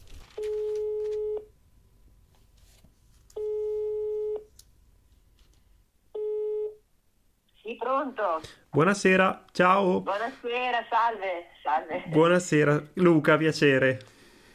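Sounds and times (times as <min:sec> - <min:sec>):
telephone line ringback tone: 0:00.4 - 0:01.5, 0:03.4 - 0:04.5, 0:06.2 - 0:06.8
speech: 0:07.9 - 0:14.2.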